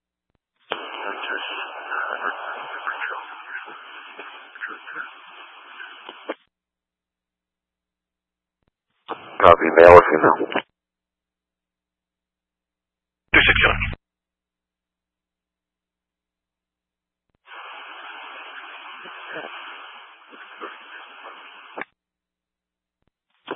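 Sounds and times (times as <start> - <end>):
radio squelch burst: 0.7 - 6.4, 9.1 - 10.6, 13.4 - 14.0, 17.5 - 21.9
speech: 1.3 - 2.9, 9.4 - 10.6.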